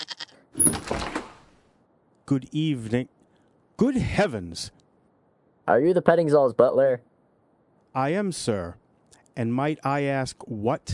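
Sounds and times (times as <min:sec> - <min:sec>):
goat bleating: 0:00.0 - 0:00.4
speech: 0:02.3 - 0:03.2, 0:03.8 - 0:04.8, 0:05.7 - 0:07.1, 0:07.9 - 0:08.8, 0:09.4 - 0:10.9.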